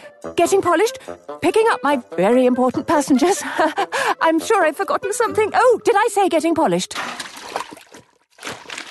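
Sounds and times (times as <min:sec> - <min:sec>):
speech: 0:00.2 - 0:07.3
laughter: 0:03.3 - 0:04.2
water splashing and spraying during an engine washdown: 0:07.0 - 0:08.8.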